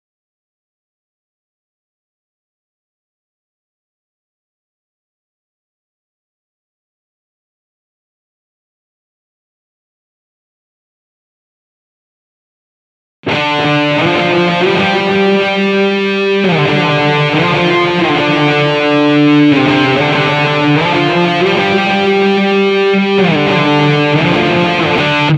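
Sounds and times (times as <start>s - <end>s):
guitar intro: 13.2s - 25.3s.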